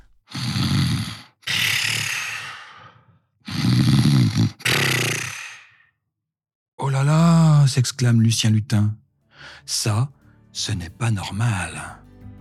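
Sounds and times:
big bear snoring in deep sleep: 0:00.0 - 0:05.9
speech: 0:07.7 - 0:12.0.

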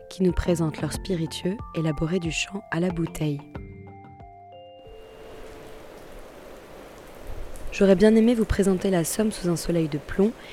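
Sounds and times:
speech: 0:00.2 - 0:03.6, 0:07.8 - 0:10.5
heavy rain pouring over farm fields in the Somme, France: 0:04.9 - 0:10.5.

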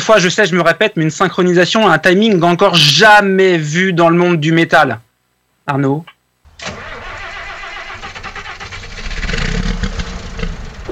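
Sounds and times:
speech: 0:00.0 - 0:05.1, 0:05.7 - 0:06.8
truck engine starting and revving to pull away: 0:06.5 - 0:10.9.

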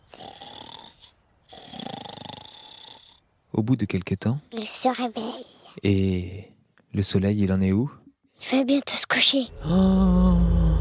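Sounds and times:
woman snoring during a nap: 0:00.1 - 0:03.2
speech: 0:03.5 - 0:10.8.

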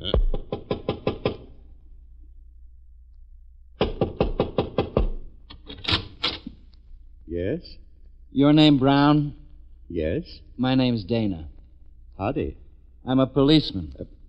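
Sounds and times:
firm rapid knocking on a door: 0:00.1 - 0:01.5, 0:03.8 - 0:05.3
speech: 0:07.4 - 0:11.5, 0:12.2 - 0:14.2.

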